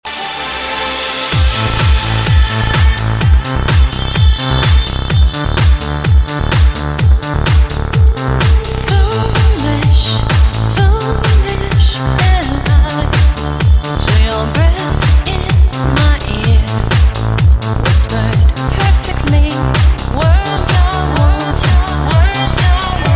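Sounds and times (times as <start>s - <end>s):
electronic beat: 0.1s - 23.1s.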